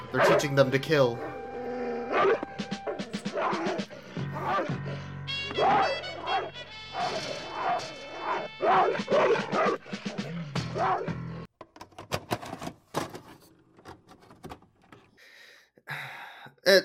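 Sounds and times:
speech: 0.1 - 1.4, 2.1 - 2.8, 5.6 - 6.1
bulldog barking: 0.2 - 0.6, 2.0 - 9.9, 10.6 - 11.2
bulldog yips and whimpers: 2.0 - 4.8, 5.6 - 9.8
busy cluttered noise: 11.5 - 16.8.

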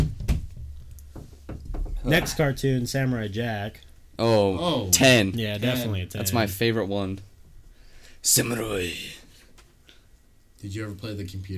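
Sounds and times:
hollow knuckle knocks on wood: 0.0 - 2.4
low hum: 0.2 - 11.5
speech: 2.0 - 7.3, 8.2 - 9.2, 10.6 - 11.5.

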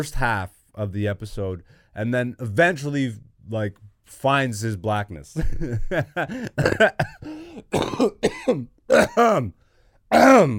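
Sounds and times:
speech: 0.0 - 10.5
person coughing: 6.3 - 9.5, 10.1 - 10.5
person clearing throat: 6.6 - 10.5.

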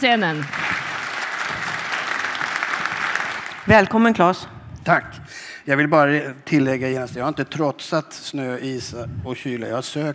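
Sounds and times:
speech: 0.0 - 0.6, 3.7 - 10.1
audience applauding: 0.0 - 4.2.

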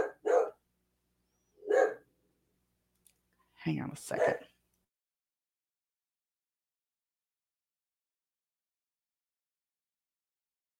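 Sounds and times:
dog barking: 0.0 - 0.6, 1.6 - 2.0, 4.1 - 4.5
speech: 3.6 - 4.4.

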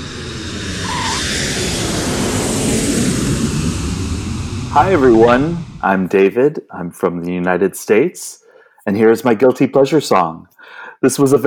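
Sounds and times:
brief whine: 0.0 - 6.0
loud steady roar of an airplane flying: 0.0 - 6.2
speech: 4.8 - 11.4.

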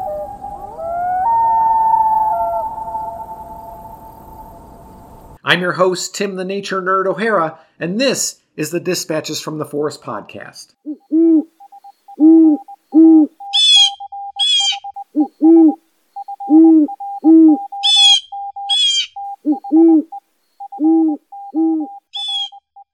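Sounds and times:
common loon calling: 0.0 - 4.4, 10.8 - 22.9
speech: 5.5 - 10.8.

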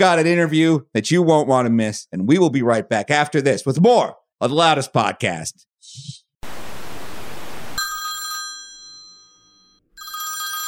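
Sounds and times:
speech: 0.0 - 6.2
loud hissing static: 6.4 - 7.8
bright metallic telephone bell ringing: 7.8 - 10.6.

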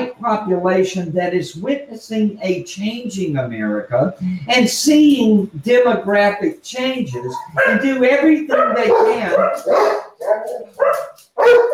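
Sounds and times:
speech: 0.2 - 11.7
dog barking: 7.2 - 7.9, 8.5 - 11.7.

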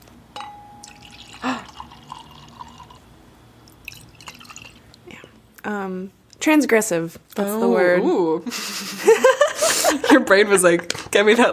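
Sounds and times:
glass clink: 0.3 - 2.9
drink being poured into a glass: 0.8 - 3.1, 3.7 - 4.9
speech: 5.6 - 11.5
laughter: 8.5 - 10.3.

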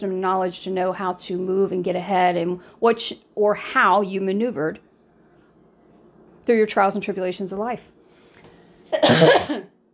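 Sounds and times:
speech: 0.0 - 4.9, 6.4 - 8.0, 8.9 - 9.7
hoarse cough with a throaty rattle: 8.9 - 9.8.

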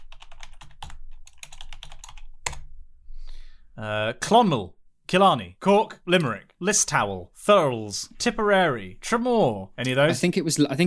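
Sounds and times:
rapid typing on a computer keyboard: 0.0 - 2.7
speech: 3.8 - 10.8.

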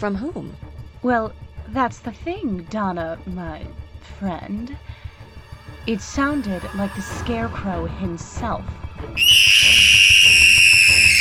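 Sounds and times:
speech: 0.0 - 5.0, 5.8 - 9.9
shrill piercing scream: 9.2 - 11.1.

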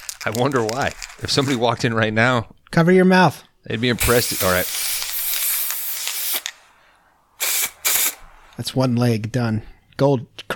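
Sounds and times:
speech: 0.2 - 4.9, 8.6 - 10.5
aerosol can of gold spray paint spraying a person's leg: 4.0 - 6.6, 7.4 - 8.2.

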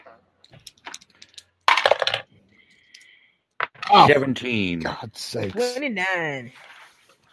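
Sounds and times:
dice rolling on a tabletop in a tabletop game: 0.5 - 2.3
speech: 3.9 - 6.7.

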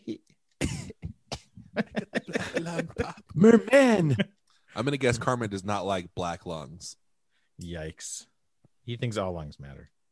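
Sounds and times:
little cough: 0.6 - 1.6
laughter: 1.6 - 4.3
speech: 1.8 - 2.0, 2.6 - 7.0, 7.6 - 10.0.

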